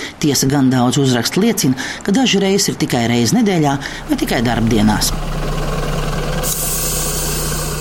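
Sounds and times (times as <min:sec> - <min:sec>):
speech: 0:00.2 - 0:05.6
bus engine idling at a stop: 0:03.4 - 0:07.8
bus air brakes hissing: 0:06.3 - 0:07.8.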